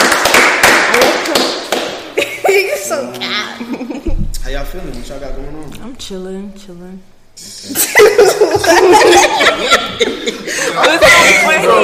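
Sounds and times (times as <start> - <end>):
small group clapping hands: 0.0 - 2.2
laughter: 3.6 - 4.2, 7.4 - 11.8
speech: 4.7 - 7.8, 8.5 - 11.8.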